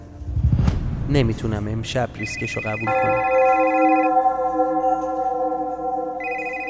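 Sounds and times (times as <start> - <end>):
speech: 1.1 - 4.0
telephone ringing with a sustained electronic tone: 2.2 - 6.6.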